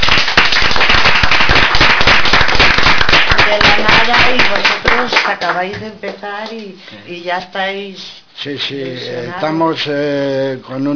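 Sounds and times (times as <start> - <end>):
applause: 0.0 - 5.7
speech: 5.6 - 10.9.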